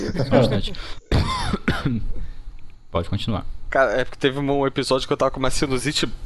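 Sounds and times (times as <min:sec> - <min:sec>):
person coughing in short harsh bursts: 0:00.0 - 0:02.2
speech: 0:00.2 - 0:02.2, 0:02.9 - 0:06.2.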